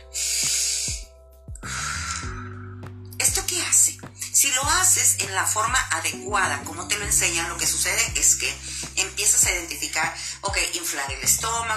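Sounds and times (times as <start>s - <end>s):
forceful controlled exhale demonstrating a breathing technique: 0.0s - 1.0s, 1.6s - 2.5s
speech: 4.5s - 11.7s.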